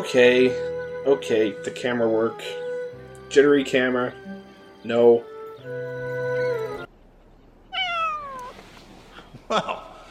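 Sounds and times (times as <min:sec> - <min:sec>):
speech: 0:00.0 - 0:02.6, 0:03.3 - 0:06.0, 0:09.5 - 0:09.8
cat meowing: 0:07.7 - 0:08.6.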